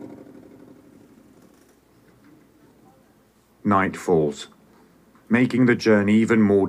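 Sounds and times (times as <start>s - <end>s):
worn-out boat engine running: 0.0s - 0.9s
speech: 3.7s - 4.6s, 5.3s - 6.6s.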